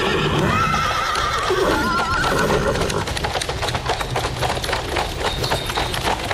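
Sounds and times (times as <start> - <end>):
horse whinnying: 0.0 - 3.2
hooves clattering: 0.0 - 6.3
horse-drawn carriage rolling past: 0.4 - 6.3.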